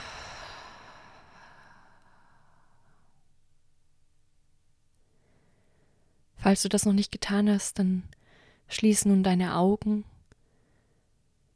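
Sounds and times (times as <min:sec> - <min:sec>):
deep slow breath in and long airy exhale: 0:00.0 - 0:03.3, 0:05.0 - 0:06.2, 0:08.2 - 0:08.7, 0:10.4 - 0:11.2
speech: 0:06.4 - 0:10.1.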